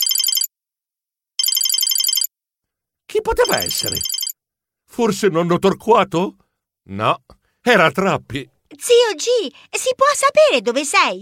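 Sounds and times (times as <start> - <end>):
telephone ringing: 0.0 - 0.5, 1.4 - 2.3, 3.4 - 4.4
speech: 3.2 - 4.2, 5.0 - 11.2.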